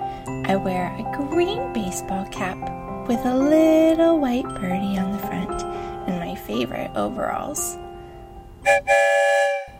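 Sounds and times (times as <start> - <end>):
speech: 0.5 - 7.8, 8.6 - 9.5
train whistle blasts as train leaves the station: 8.6 - 9.7.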